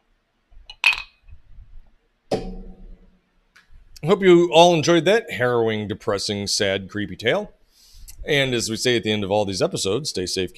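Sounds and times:
two glasses clinking in a toast: 0.7 - 1.1
speech: 4.0 - 7.6, 8.2 - 10.5.

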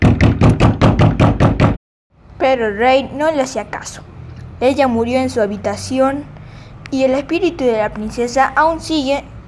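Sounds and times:
heavy pounding on a door: 0.0 - 1.8
speech: 2.5 - 9.3.

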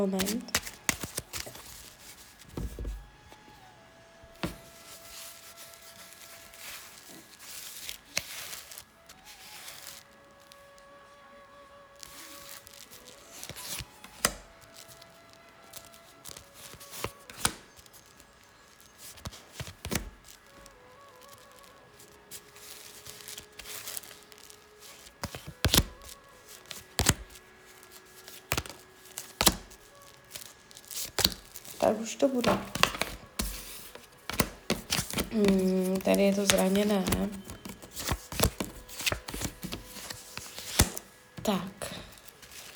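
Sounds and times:
speech: 0.0 - 0.6, 32.0 - 32.9, 35.4 - 37.5, 41.5 - 41.7
tarot cards being shuffled: 0.0 - 11.0, 12.0 - 42.7.

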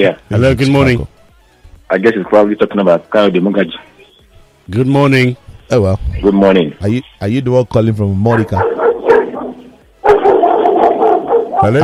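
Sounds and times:
speech: 0.0 - 1.1, 1.9 - 3.9, 4.7 - 8.8, 11.6 - 11.8
caller's dogs barking: 8.4 - 11.8.

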